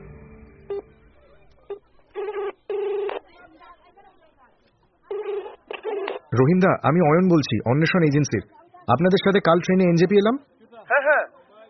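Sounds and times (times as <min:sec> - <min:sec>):
murmur of chatter: 0:00.7 - 0:11.6
telephone number dialing tones in a car: 0:01.7 - 0:03.3, 0:05.1 - 0:06.3
speech: 0:06.4 - 0:10.5.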